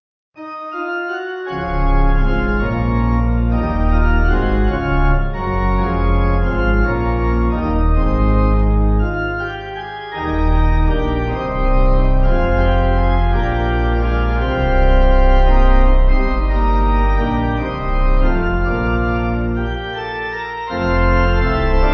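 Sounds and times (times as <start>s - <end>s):
pipe organ: 0.4s - 21.9s.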